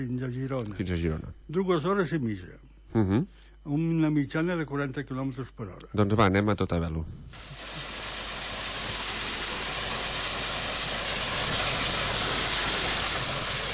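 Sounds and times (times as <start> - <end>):
speech: 0.0 - 7.9
steam locomotive chugging with rumbling engine noise: 7.4 - 13.7.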